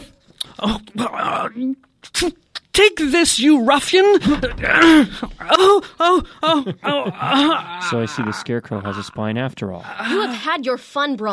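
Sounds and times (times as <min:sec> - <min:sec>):
speech: 0:00.6 - 0:11.3
laughter: 0:04.2 - 0:09.4
dog making short whiny growling vocalizations: 0:07.2 - 0:09.2.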